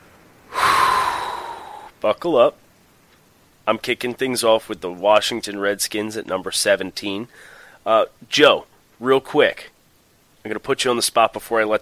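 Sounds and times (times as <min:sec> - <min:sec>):
deep breath in: 0:00.5 - 0:01.9, 0:07.3 - 0:07.8
speech: 0:02.0 - 0:02.6, 0:03.7 - 0:09.7, 0:10.4 - 0:11.8.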